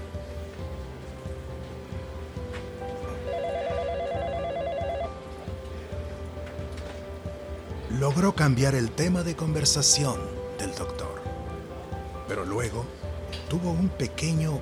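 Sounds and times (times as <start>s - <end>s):
steady rain-like hiss: 0.0s - 3.3s, 5.2s - 14.6s
telephone ringing in a fast-trilling electronic burst: 3.2s - 5.2s
speech: 8.0s - 11.3s, 12.3s - 14.6s.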